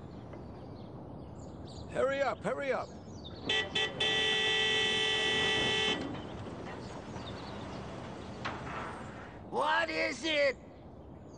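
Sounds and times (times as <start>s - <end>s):
steady outdoor noise: 0.0s - 11.3s
speech: 1.8s - 4.2s, 9.5s - 10.7s
car horn honking: 3.4s - 7.8s.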